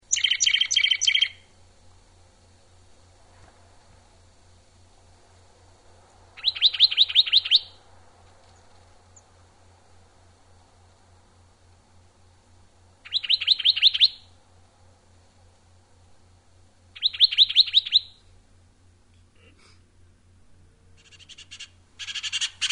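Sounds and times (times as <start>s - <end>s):
Juniper Titmouse: 0.1s - 1.5s, 6.4s - 7.8s, 13.0s - 14.3s, 17.0s - 18.2s, 21.0s - 22.7s.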